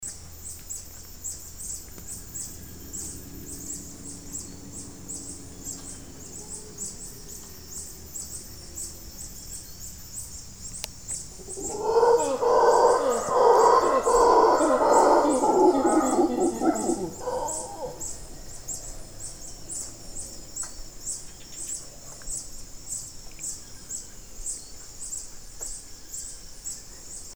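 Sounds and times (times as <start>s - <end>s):
mantled howler calling in Panama: 1.8s - 22.2s.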